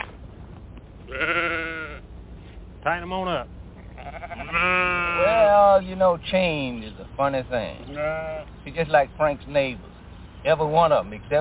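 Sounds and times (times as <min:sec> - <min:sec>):
quiet outdoor noise: 0:00.0 - 0:11.3
single drawn-out sheep bleat: 0:01.1 - 0:02.1, 0:03.8 - 0:05.5, 0:07.8 - 0:08.5
speech: 0:02.8 - 0:03.6, 0:04.5 - 0:11.3.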